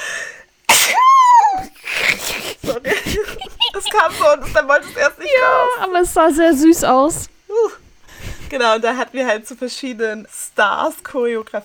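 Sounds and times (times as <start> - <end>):
loud sneeze: 0.7 - 6.0, 7.8 - 8.6
laughter: 1.6 - 7.2
speech: 3.9 - 7.3, 8.5 - 11.6.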